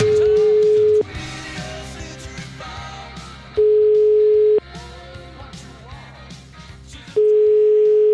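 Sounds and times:
telephone dial tone beeps while placing a call: 0:00.2 - 0:01.0, 0:03.6 - 0:04.6, 0:07.2 - 0:08.1.

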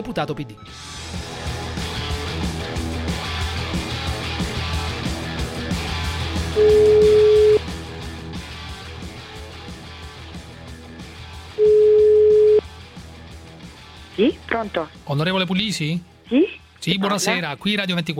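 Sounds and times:
speech: 0:00.0 - 0:01.6, 0:06.6 - 0:07.0, 0:14.2 - 0:18.1
music with a steady beat: 0:00.0 - 0:18.1
telephone ringback tone of an outgoing call: 0:06.6 - 0:07.6, 0:11.6 - 0:12.6.

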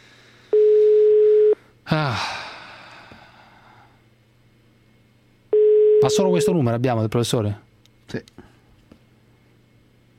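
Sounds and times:
steady telephone busy tone on a blocked line: 0:00.5 - 0:01.6, 0:05.5 - 0:06.6
speech: 0:01.9 - 0:02.4, 0:06.1 - 0:08.5
person's brief vocal outburst: 0:01.9 - 0:02.5.

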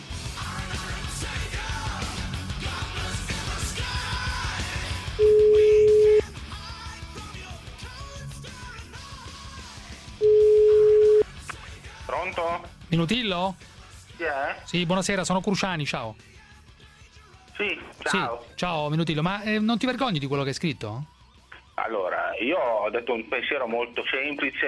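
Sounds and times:
busy, noisy background of music-like sound: 0:00.0 - 0:24.6
telephone ringback tones: 0:05.2 - 0:06.2, 0:10.2 - 0:11.2
speech: 0:13.0 - 0:16.4, 0:17.6 - 0:21.2, 0:21.8 - 0:24.6.

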